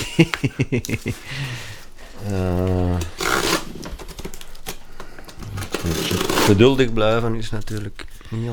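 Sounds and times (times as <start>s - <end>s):
laughter: 0.0s - 3.1s
tape tearing away from a package: 0.0s - 8.3s
speech: 0.2s - 3.5s, 5.8s - 8.5s
knife cutting through black gaffer tape on a package: 2.0s - 7.0s.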